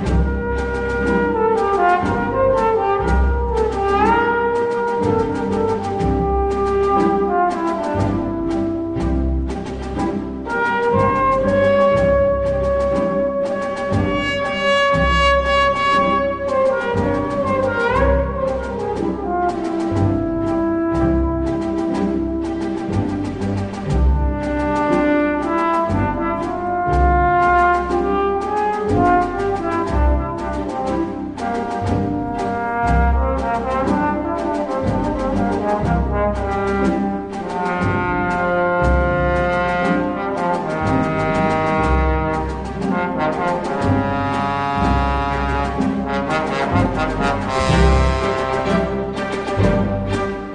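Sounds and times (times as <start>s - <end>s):
trombone solo: 0.1s - 9.4s, 10.0s - 23.0s, 23.9s - 50.2s.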